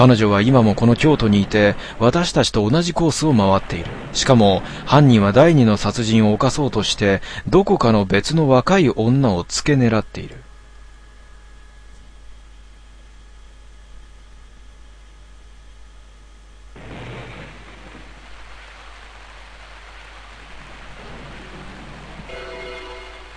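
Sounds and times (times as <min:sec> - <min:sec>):
steady rain falling: 0:00.0 - 0:08.6, 0:16.6 - 0:23.3
speech: 0:00.0 - 0:10.4.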